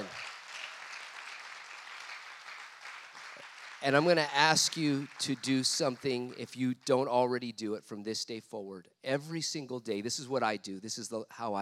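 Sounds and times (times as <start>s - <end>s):
audience applause: 0.0s - 6.2s
speech: 3.8s - 11.6s.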